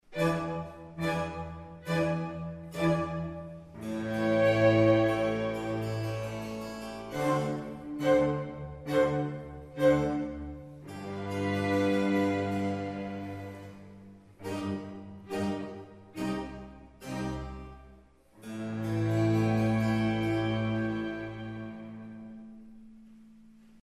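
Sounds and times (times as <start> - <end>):
concerto for violins, cello and strings: 0.0 - 23.8.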